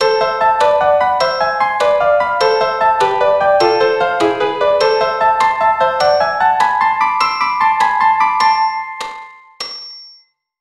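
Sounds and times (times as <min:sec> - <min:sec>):
melody in A minor: 0:00.0 - 0:09.5.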